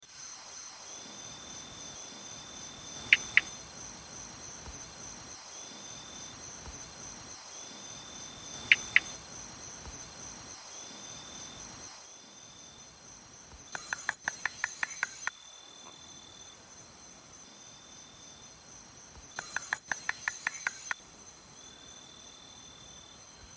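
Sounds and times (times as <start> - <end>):
Polypedates discantus Malayan slender tree frog calling: 2.9 - 4.9, 8.5 - 10.0, 13.5 - 16.0, 19.1 - 21.0.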